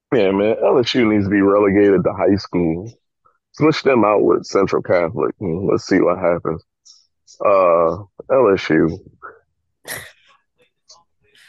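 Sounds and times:
speech: 0.1s - 3.0s, 3.6s - 6.7s, 7.3s - 9.2s, 9.8s - 10.1s
person sneezing: 9.9s - 10.2s.

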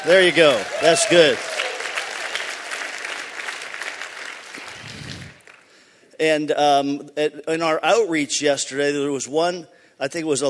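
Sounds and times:
speech: 0.0s - 1.6s, 6.2s - 10.4s
audience applause: 0.0s - 5.8s.

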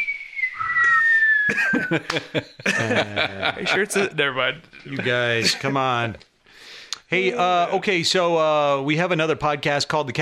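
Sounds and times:
breathy attempt at whistling with lips dried out from cigars: 0.0s - 2.1s
choppy bursts of voices or laughter: 1.5s - 6.1s
speech: 1.5s - 6.3s, 7.1s - 10.2s.

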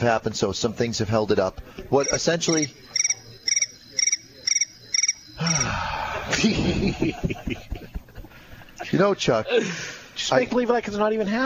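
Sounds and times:
speech: 0.0s - 3.0s, 6.3s - 8.0s, 8.9s - 11.4s
crickets chirping: 1.9s - 6.4s
laughter: 5.4s - 10.0s.

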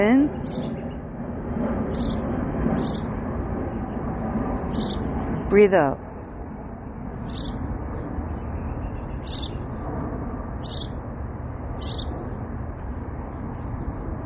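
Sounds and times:
speech: 0.0s - 0.6s, 5.5s - 6.0s
birds chirping all around outdoors: 0.0s - 1.1s, 1.8s - 11.0s, 11.7s - 14.2s.

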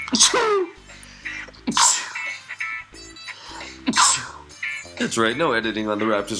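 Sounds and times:
person sneezing: 0.1s - 0.8s, 1.7s - 2.3s, 3.6s - 4.5s
speech: 0.1s - 0.8s, 5.0s - 6.3s
breathy inhales: 0.8s - 2.6s, 3.2s - 4.6s.

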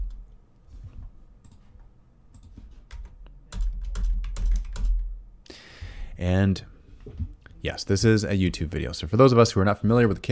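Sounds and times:
computer keyboard typing to post a link into a video chat: 2.3s - 5.1s
speech: 6.2s - 6.7s, 7.6s - 10.3s.

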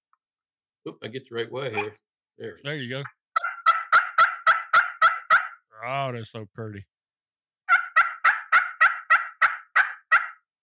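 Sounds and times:
speech: 0.8s - 3.2s, 5.8s - 6.9s
push-button box turkey call yelps: 1.7s - 2.0s, 3.4s - 5.7s, 7.7s - 10.5s.

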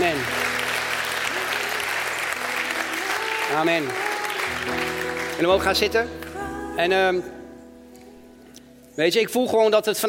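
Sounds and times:
church congregation applauding: 0.0s - 6.4s
speech: 3.5s - 6.2s, 6.8s - 7.4s, 9.0s - 10.0s.

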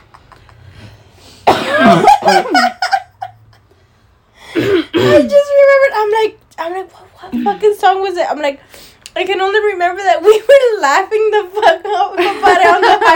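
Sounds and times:
person coughing: 1.4s - 2.4s, 4.5s - 5.3s
speech: 6.2s - 13.1s.

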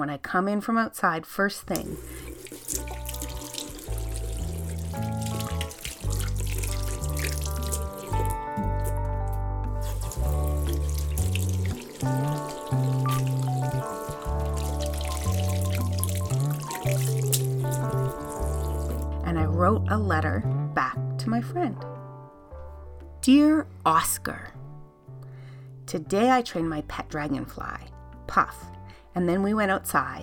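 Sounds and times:
speech: 0.0s - 2.9s, 19.6s - 20.6s, 21.2s - 21.9s, 23.2s - 24.6s, 25.9s - 30.2s
running tap water as hands are washed at home: 1.7s - 9.0s, 9.8s - 19.2s.

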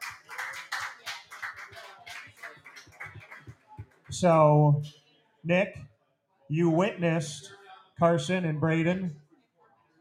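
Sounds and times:
group of people applauding a boys lacrosse team: 0.0s - 4.5s
speech: 4.2s - 5.9s, 6.5s - 9.2s.

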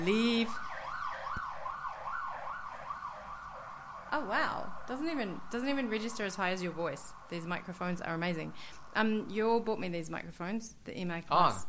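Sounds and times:
speech: 0.0s - 0.7s, 4.1s - 11.6s
fire engine siren: 0.0s - 7.3s.

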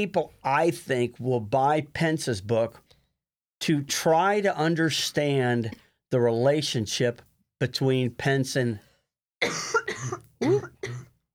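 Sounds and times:
speech: 0.0s - 2.8s, 3.6s - 10.2s
woman coughing: 9.4s - 11.1s.

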